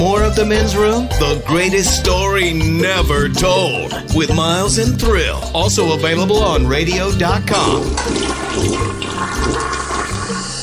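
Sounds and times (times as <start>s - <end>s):
speech: 0.0s - 9.8s
toilet flushing: 7.5s - 10.6s.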